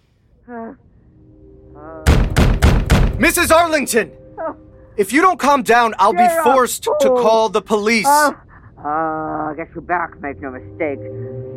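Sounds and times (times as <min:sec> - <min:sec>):
woman banging on a revolving glass door: 0:02.1 - 0:03.4
speech: 0:03.2 - 0:11.4.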